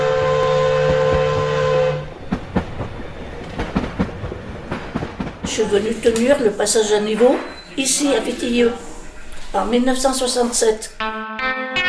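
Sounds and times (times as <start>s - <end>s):
steam train whistle at a station: 0.0s - 2.1s
steam train wheels clacking over the rails: 0.0s - 9.5s
speech: 5.6s - 8.9s, 9.5s - 11.3s.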